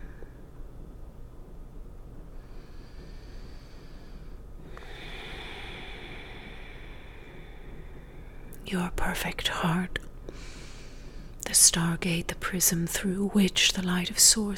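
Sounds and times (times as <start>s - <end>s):
soft noise: 0.0s - 14.5s
slow deep breathing: 2.2s - 8.7s, 10.2s - 11.4s
speech: 8.7s - 10.1s, 11.5s - 14.5s.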